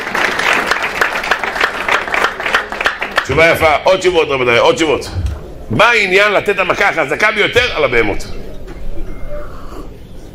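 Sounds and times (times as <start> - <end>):
audience applause: 0.0 - 4.1
speech: 3.3 - 8.4.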